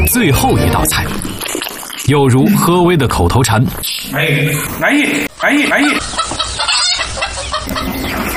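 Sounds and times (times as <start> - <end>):
speech: 0.2 - 1.3, 2.1 - 6.3
agitated hen clucking and squawking as it flees: 4.2 - 8.3.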